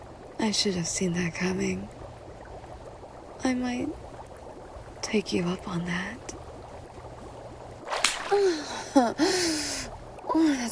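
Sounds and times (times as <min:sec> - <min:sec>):
speech: 0:00.4 - 0:02.0, 0:03.4 - 0:04.0, 0:05.0 - 0:06.4, 0:08.3 - 0:10.6
hand slapping bare breasts: 0:07.9 - 0:08.8.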